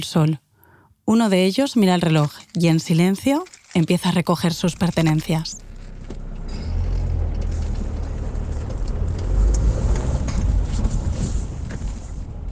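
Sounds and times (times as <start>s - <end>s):
speech: 0.0s - 0.4s, 1.1s - 5.6s
road noise: 4.5s - 12.5s
car engine running: 4.6s - 12.1s.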